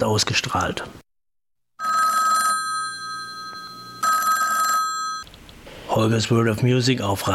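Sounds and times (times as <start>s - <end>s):
speech: 0.0s - 1.0s, 6.0s - 7.3s
telephone bell ringing: 1.8s - 5.3s.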